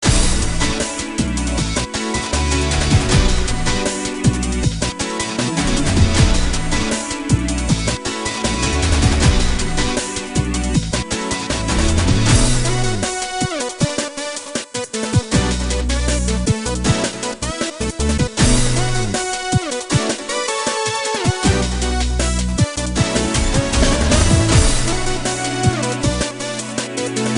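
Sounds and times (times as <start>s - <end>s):
pop music in B minor: 0.0s - 27.3s.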